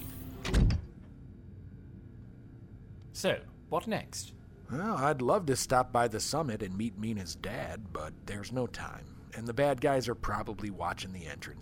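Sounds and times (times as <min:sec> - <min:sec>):
door shutting with a heavy thunk and rattle: 0:00.0 - 0:01.0
speech: 0:03.2 - 0:11.6.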